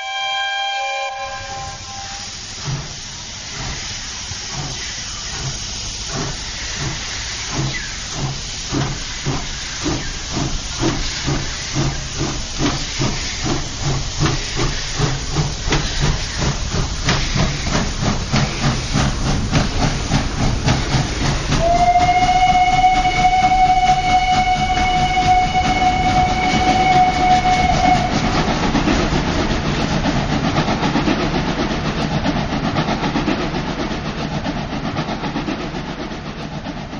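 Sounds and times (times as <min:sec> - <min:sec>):
departing steam train whistle: 0:00.0 - 0:02.4, 0:21.6 - 0:28.5
loud steam hissing of a departing steam train: 0:01.2 - 0:36.9.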